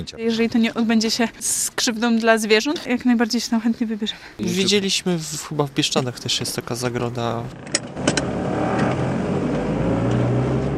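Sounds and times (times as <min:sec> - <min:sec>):
speech: 0:00.0 - 0:08.3
road rumble: 0:05.7 - 0:10.7
car engine hum on a drive from Supraśl to Kopna Góra: 0:06.2 - 0:10.7.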